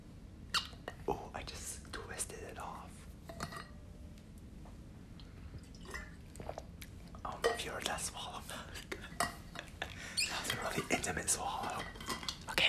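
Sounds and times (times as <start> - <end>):
soft wet mouth clicks: 0.5 - 1.0, 5.6 - 7.0
faint breathy whispering: 1.0 - 3.1, 7.2 - 9.2, 9.8 - 11.9, 12.5 - 12.6
sipping water: 5.1 - 11.8
gulping swallows: 5.6 - 6.9.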